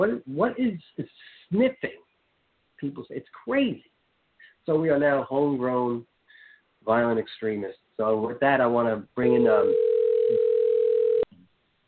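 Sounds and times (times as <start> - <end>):
speech: 0.0 - 2.0, 2.8 - 3.9, 4.7 - 6.1, 6.8 - 9.9
electronic telephone tone: 9.6 - 11.3.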